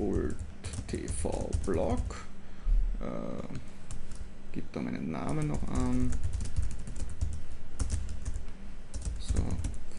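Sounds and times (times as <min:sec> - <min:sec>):
typing on a computer keyboard: 0:00.0 - 0:02.1, 0:05.2 - 0:09.9
speech: 0:00.3 - 0:02.3, 0:03.0 - 0:03.8, 0:04.5 - 0:06.4.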